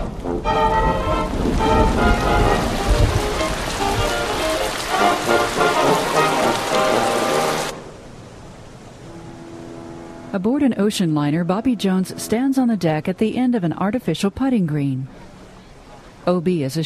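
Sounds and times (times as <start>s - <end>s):
rain falling on surfaces in a dense downpour: 0.0s - 12.4s
speech: 10.4s - 15.2s, 16.2s - 16.8s.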